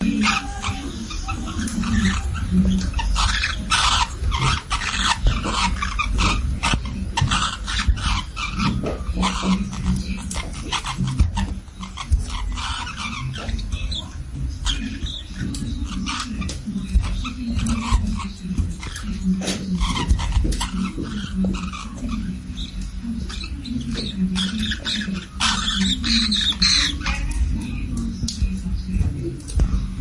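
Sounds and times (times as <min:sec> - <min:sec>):
Forpus parrots mating: 0:00.0 - 0:29.9.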